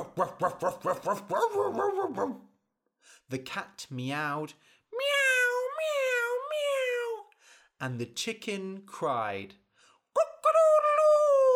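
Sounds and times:
person imitating dog barking: 0.0 - 2.4, 5.0 - 7.3, 10.2 - 11.5
speech: 0.2 - 5.3, 7.8 - 9.6, 10.2 - 10.8.

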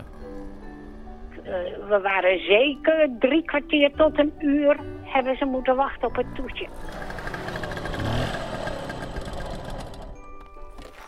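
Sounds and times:
small scooter engine buzzing while riding: 0.0 - 1.6, 6.2 - 10.9
speech: 1.5 - 7.2.

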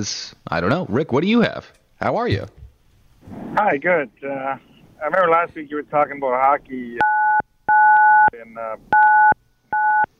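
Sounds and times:
speech: 0.0 - 2.6, 3.2 - 7.2, 8.4 - 9.1
smartphone keypad dual-tone beeps from caller's cheek pressing buttons: 7.0 - 8.3, 9.0 - 10.1.

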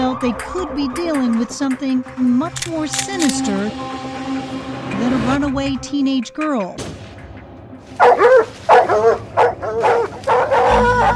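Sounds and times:
speech: 0.2 - 4.2, 5.0 - 6.9, 8.0 - 11.1
several cadaver dogs barking and yipping excitedly: 8.0 - 11.1
whiny rising howl-like dog notes: 10.5 - 11.1.

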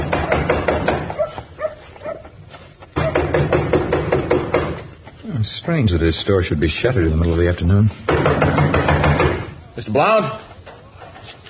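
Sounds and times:
heavy rapid pounding on a door: 0.0 - 1.2, 3.0 - 4.9, 8.1 - 9.5
speech: 5.6 - 9.0, 9.8 - 10.5.

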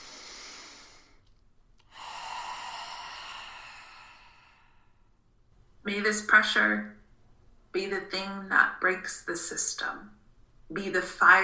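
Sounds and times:
deep human breath: 0.0 - 1.3, 1.9 - 5.2
speech: 5.9 - 7.0, 7.7 - 11.4.

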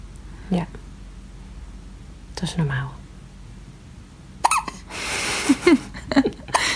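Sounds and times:
steady hiss: 0.0 - 6.7
speech: 0.5 - 0.8, 2.4 - 3.0, 5.5 - 6.3
baby hiccuping: 4.4 - 4.9.

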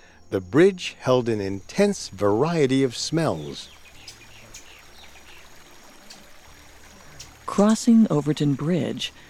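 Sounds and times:
speech: 0.3 - 3.8, 7.6 - 9.2
brook flowing below a bridge in a wooded ravine: 1.8 - 9.2
local birds chirping: 2.6 - 7.9.

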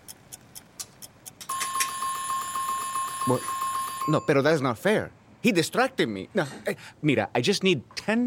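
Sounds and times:
timer ticking: 0.0 - 4.5
timer ringing with a bright electronic tone: 1.5 - 4.6
speech: 3.3 - 8.2.

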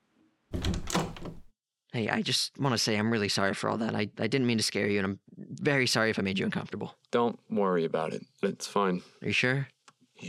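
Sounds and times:
door opening with scraping and rattling: 0.5 - 1.5
speech: 2.0 - 10.2.

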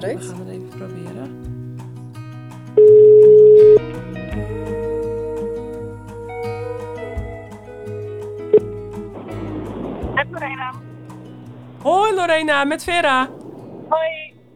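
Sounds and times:
speech: 0.0 - 1.6, 11.8 - 14.1
soft music: 0.0 - 13.9
telephone ringing tone of an outgoing call: 2.8 - 3.8.

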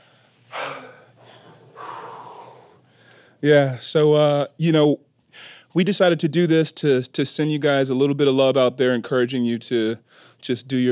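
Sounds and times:
heavy breathing of winded people catching their breath: 0.0 - 3.4, 5.3 - 5.7
speech: 3.4 - 10.9.

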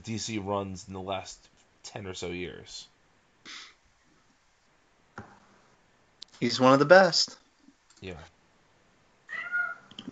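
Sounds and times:
speech: 0.0 - 3.7, 6.4 - 7.4, 8.0 - 8.4
cat meowing: 9.3 - 9.9.

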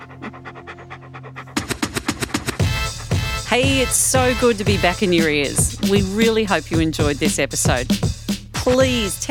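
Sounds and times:
dog panting: 0.0 - 5.8
speech: 3.5 - 9.2.

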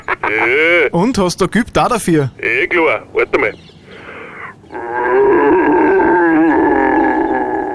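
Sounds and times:
laughter: 0.0 - 0.9
speech: 0.3 - 3.6
person imitating a red deer stag's rutting roar: 4.7 - 7.7.

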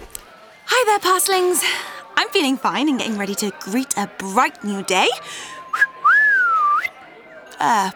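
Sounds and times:
speech: 0.9 - 5.6, 7.6 - 7.9
person whistling a short tune: 5.7 - 6.9.

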